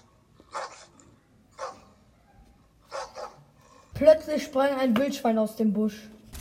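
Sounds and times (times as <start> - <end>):
dogs barking at a tent camp: 0.0 - 3.6
speech: 4.0 - 6.2.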